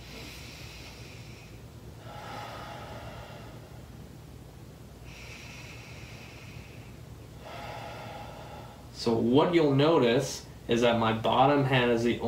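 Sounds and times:
deep breaths in and out during a clinic breathing check: 0.0 - 9.1
constant low hum: 0.0 - 12.2
speech: 9.0 - 12.2.

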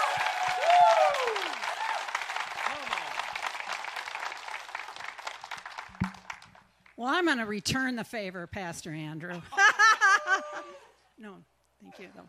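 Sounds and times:
people cheering: 0.0 - 6.3, 9.9 - 11.0
crowd clapping and applauding: 0.0 - 6.9
speech: 7.0 - 9.8, 11.3 - 12.2
laughter: 9.3 - 11.0.

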